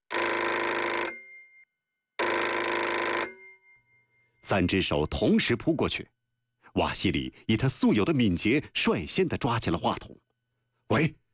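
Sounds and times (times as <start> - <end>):
telephone bell ringing: 0.1 - 4.5
speech: 4.5 - 6.2, 6.8 - 10.3, 10.9 - 11.2.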